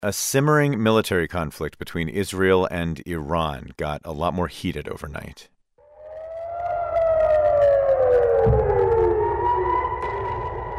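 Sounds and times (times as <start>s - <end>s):
speech: 0.0s - 5.5s
air raid sirens wailing in the Golan Heights during rocket fire: 5.8s - 10.7s
brief low thump: 8.2s - 9.3s.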